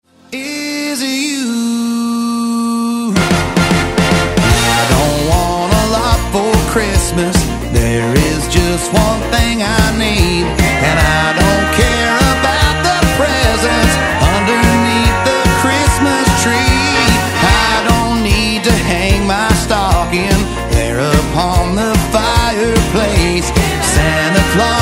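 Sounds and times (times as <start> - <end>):
country music: 0.1 - 24.8.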